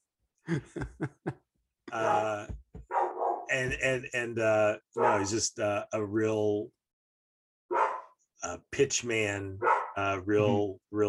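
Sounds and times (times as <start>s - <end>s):
laughter: 0.5s - 2.4s
speech: 0.5s - 2.6s, 3.5s - 6.8s, 8.4s - 11.0s
female dog barking excitedly with whiny howling yelps: 2.8s - 3.5s, 5.0s - 5.3s, 7.7s - 8.0s, 9.6s - 10.0s.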